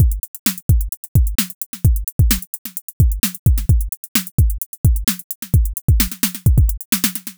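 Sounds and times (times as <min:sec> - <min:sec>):
syncopated breaks drum loop: 0:00.0 - 0:07.3.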